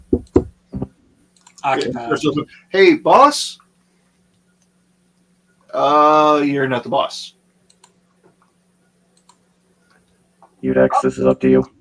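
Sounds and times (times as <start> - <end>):
polite soft knocking on a door: 0.0 - 0.9
speech: 1.6 - 3.6, 5.7 - 7.4, 10.6 - 11.7.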